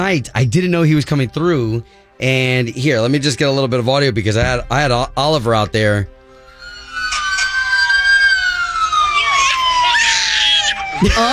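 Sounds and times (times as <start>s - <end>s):
speech: 0.0s - 6.2s, 11.0s - 11.3s
fire truck siren wailing: 6.2s - 11.3s.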